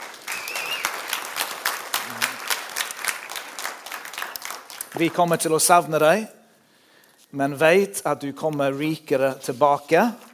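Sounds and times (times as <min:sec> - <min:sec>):
audience at a church service applauding: 0:00.0 - 0:05.3
speech: 0:05.0 - 0:06.4, 0:07.3 - 0:10.3.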